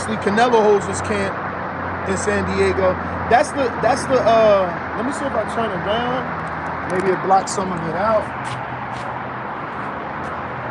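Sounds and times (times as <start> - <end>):
traffic noise from passing cars: 0.0 - 10.6
speech: 0.1 - 1.5, 2.1 - 8.6.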